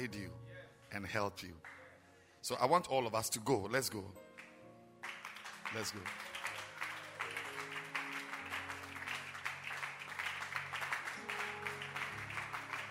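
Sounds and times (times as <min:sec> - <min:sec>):
speech: 0:00.0 - 0:01.8, 0:02.4 - 0:04.2, 0:05.7 - 0:06.2
audience clapping at a church service: 0:04.3 - 0:12.9.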